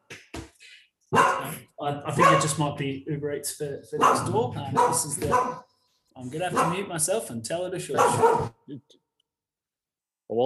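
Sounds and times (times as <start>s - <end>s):
dog barking as someone arrives at the door: 1.1s - 2.6s, 4.0s - 5.7s, 6.5s - 6.9s, 7.9s - 8.6s
speech: 1.1s - 9.0s, 10.3s - 10.4s.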